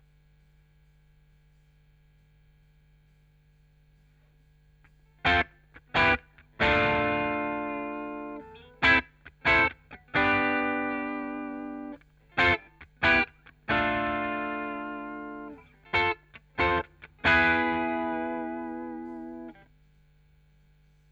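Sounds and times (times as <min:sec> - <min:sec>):
guitar with chorus effect: 0:05.1 - 0:19.6.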